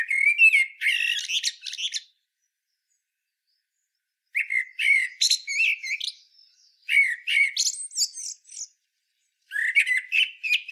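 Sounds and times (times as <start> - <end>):
Common blackbird singing fluty phrases: 0.0 - 10.7.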